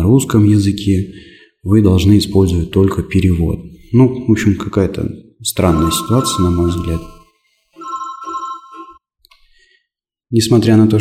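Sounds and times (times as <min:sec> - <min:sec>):
speech: 0:00.1 - 0:07.2, 0:10.3 - 0:10.9
mobile phone ringtone playing short electronic melody: 0:05.6 - 0:09.0.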